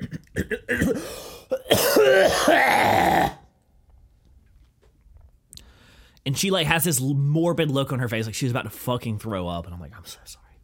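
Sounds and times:
harsh hacking coughs: 0.0 - 3.4
throat clearing: 0.0 - 3.4
speech: 0.4 - 1.2, 6.4 - 10.5.

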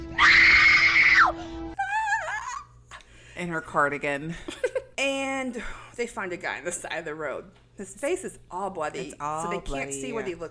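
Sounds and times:
woman's horror movie scream: 0.0 - 2.7
speech: 3.4 - 10.4.

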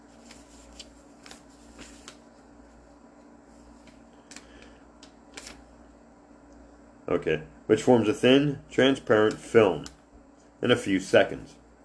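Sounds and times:
soft crisp paper rustles as a page is turned: 0.0 - 2.8, 5.3 - 5.7
quiet steady hum: 0.0 - 11.8
speech: 7.1 - 10.0, 10.6 - 11.6.

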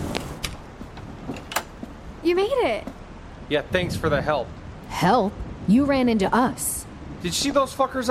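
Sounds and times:
house door pushed shut: 0.2 - 1.8
speech: 2.2 - 8.0.

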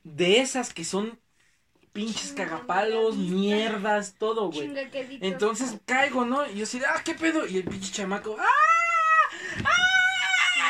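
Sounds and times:
speech: 0.2 - 1.2, 2.0 - 8.7
voice imitating a boy's piercing scream: 8.4 - 10.6.

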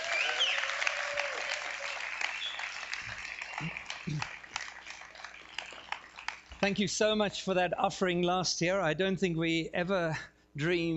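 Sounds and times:
people whistling: 0.0 - 0.7, 1.8 - 3.9
people cheering: 0.0 - 6.5
large crowd applauding: 0.0 - 6.8
speech: 6.6 - 10.9.

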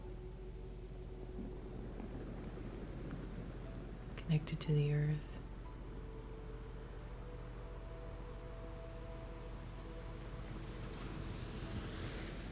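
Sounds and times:
low wind rumble: 0.0 - 12.5
ocean surf rushing against a shore: 1.2 - 5.6, 9.8 - 12.5
speech: 4.3 - 5.4.

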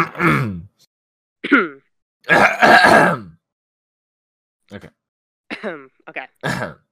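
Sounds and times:
speech: 0.0 - 0.7, 1.4 - 3.2, 4.7 - 5.0, 5.6 - 6.8
coughing and throat clearing: 0.0 - 0.8, 1.4 - 3.4, 5.5 - 5.8, 6.4 - 6.9.

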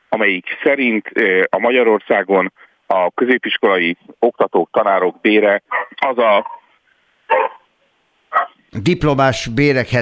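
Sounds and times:
speech: 0.2 - 6.6, 8.4 - 9.9
dog barking: 7.3 - 7.7, 8.3 - 8.6.

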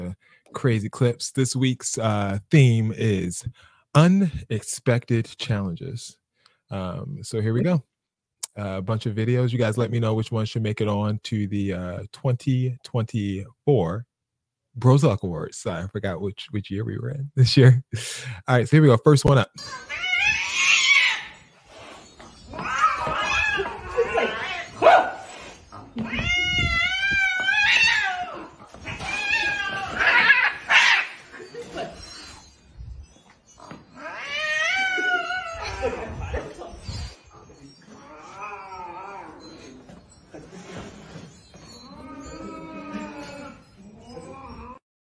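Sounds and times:
speech: 0.5 - 7.9, 8.6 - 14.1, 14.8 - 20.0
two cats yowling and caterwauling at each other: 19.6 - 21.6, 22.5 - 31.7, 33.9 - 36.6, 37.8 - 39.8, 41.8 - 44.8.

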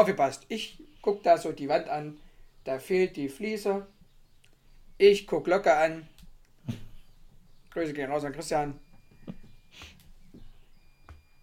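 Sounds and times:
speech: 0.0 - 4.0, 5.0 - 6.8, 7.7 - 8.8
washing machine end-of-cycle beep: 8.0 - 11.4.

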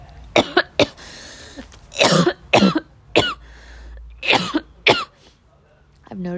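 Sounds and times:
person coughing harshly after a bong hit: 0.4 - 1.0, 2.0 - 3.4, 4.2 - 5.2.

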